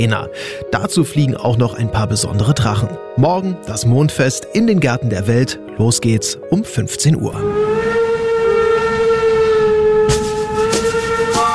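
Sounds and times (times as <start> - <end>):
speech: 0.0 - 8.0
train locomotive horn blaring: 7.3 - 11.5.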